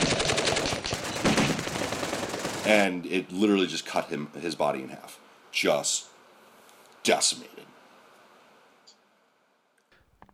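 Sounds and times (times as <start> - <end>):
machine gun fire from two squads and two machine gun teams in combat in Iraq: 0.0 - 2.9
speech: 2.7 - 6.1, 7.0 - 7.8.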